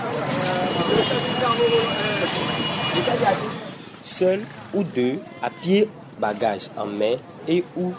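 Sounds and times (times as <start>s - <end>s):
motorbike engines humming and droning: 0.0s - 5.7s
busy road traffic roar: 0.0s - 7.9s
voices chattering faintly: 0.0s - 7.9s
speech: 3.0s - 3.5s, 4.2s - 7.9s.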